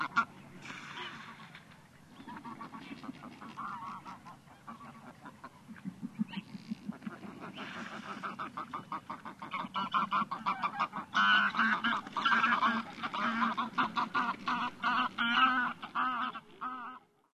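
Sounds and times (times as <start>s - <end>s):
greylag geese Anser anser honking and cackling: 0.0s - 1.6s, 2.2s - 17.1s.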